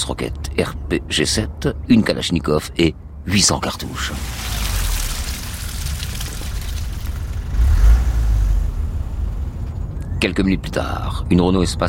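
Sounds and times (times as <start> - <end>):
speech: 0.0 - 4.6, 10.2 - 11.8
low road noise: 0.0 - 11.8
car engine rumbling: 2.9 - 11.8.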